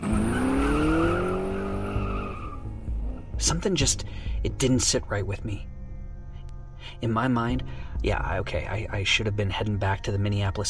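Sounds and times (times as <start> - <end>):
rental car tires squealing while peeling out: 0.0 - 3.2
rental car engine rumble: 0.0 - 9.2
speech: 3.4 - 5.7, 6.9 - 10.6.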